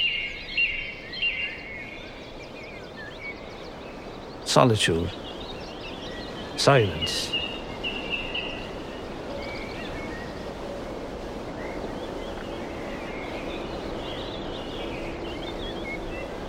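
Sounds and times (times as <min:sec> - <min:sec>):
faint birdsong: 0:00.0 - 0:16.4
steady breezy outdoor hush: 0:03.6 - 0:16.4
speech: 0:04.5 - 0:05.2, 0:06.6 - 0:07.4.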